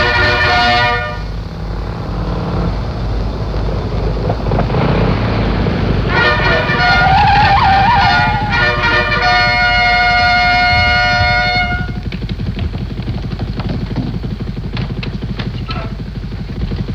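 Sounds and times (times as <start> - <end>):
car horn blasts: 0.0 - 1.4, 5.9 - 12.1
car engine rumbling as it pulls up: 0.0 - 16.9.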